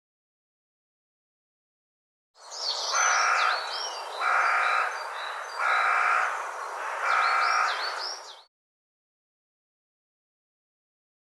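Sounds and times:
bird harsh drawn-out call: 2.6s - 8.5s.

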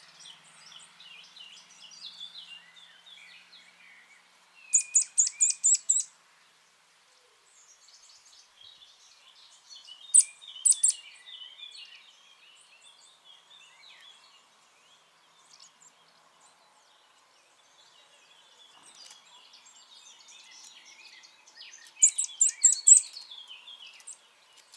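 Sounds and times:
faint twittering of other birds: 0.0s - 24.7s
Eurasian nuthatch Sitta europaea sharp high calls: 4.7s - 6.1s, 10.1s - 11.0s, 21.9s - 23.2s.

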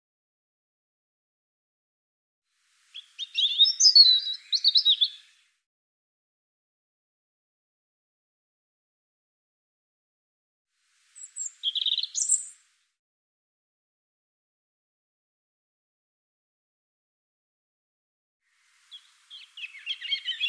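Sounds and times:
European robin song: 2.6s - 5.6s, 11.0s - 12.8s, 18.5s - 20.4s.

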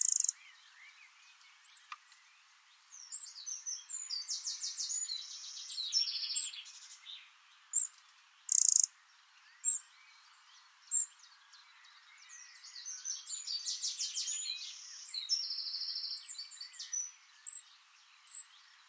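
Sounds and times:
bird song with buzzy trills: 0.0s - 18.8s.

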